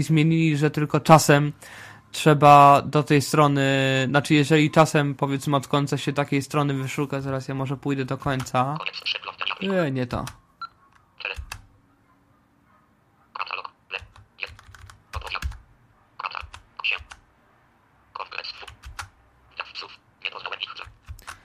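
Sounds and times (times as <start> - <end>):
speech: 0.0 - 10.4
keyboard left, right and K keys being pressed: 10.1 - 11.7, 14.0 - 15.7, 16.4 - 17.2, 18.6 - 19.1, 20.8 - 21.4.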